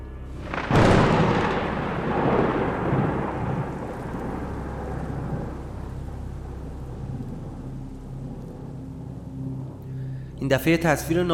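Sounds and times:
very loud thunderclap with deep rumble: 0.4s - 7.6s
speech: 10.5s - 11.3s.

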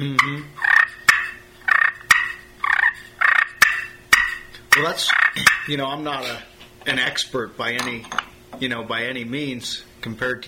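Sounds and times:
speech: 0.0s - 0.6s, 4.8s - 10.4s
hen turkey clucks made on a turkey call: 0.2s - 5.7s.

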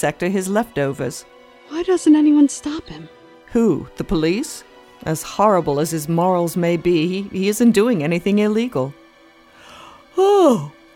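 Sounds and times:
speech: 0.0s - 9.0s, 10.2s - 10.8s
person yawning: 9.6s - 10.8s.

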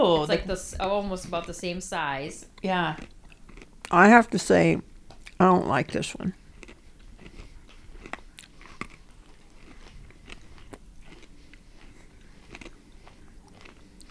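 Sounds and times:
speech: 0.0s - 3.2s, 3.9s - 6.4s
biting and chewing a crunchy almond cookie snack: 2.6s - 4.1s, 5.1s - 5.5s, 6.4s - 14.0s.

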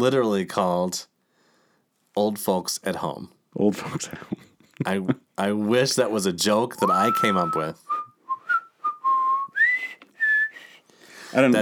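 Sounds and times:
speech: 0.0s - 1.1s, 2.2s - 8.0s, 11.3s - 11.5s
man whistling a slow folk melody: 6.8s - 10.8s.

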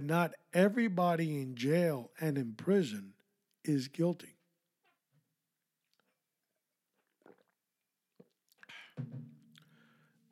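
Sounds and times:
speech: 0.0s - 4.4s, 9.0s - 9.3s
person drinking water: 6.9s - 10.0s
loud gulp of water: 7.0s - 7.6s
brief breathy exhale: 9.6s - 10.2s.

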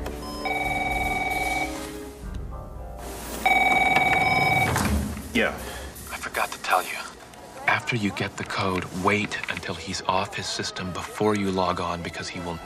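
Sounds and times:
telephone ringing in electronic bursts: 0.2s - 1.9s, 3.4s - 5.0s
speech: 5.3s - 5.7s, 6.3s - 7.0s, 7.9s - 12.6s.

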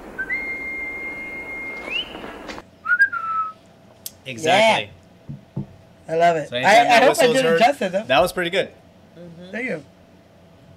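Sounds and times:
person whistling a short signature tune: 0.2s - 2.2s, 2.8s - 3.6s
speech: 4.2s - 5.4s, 6.1s - 9.9s.

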